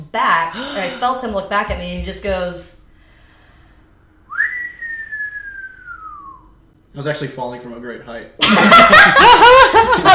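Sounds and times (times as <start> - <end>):
faint hum: 0.0 - 10.1
speech: 0.1 - 2.8, 7.0 - 10.1
man whistling leaving an apartment: 4.3 - 6.6
laughter: 8.4 - 10.1.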